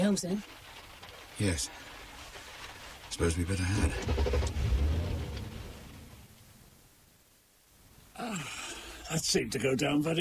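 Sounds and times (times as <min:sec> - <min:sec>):
speech: 0:00.1 - 0:00.6, 0:01.4 - 0:01.9, 0:03.1 - 0:04.6, 0:08.2 - 0:10.1
car engine rumbling as the car pulls away: 0:03.2 - 0:06.4.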